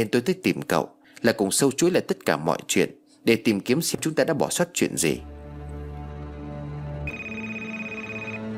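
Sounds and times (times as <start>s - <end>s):
speech: 0.0s - 5.3s
telephone ringing: 7.1s - 8.4s.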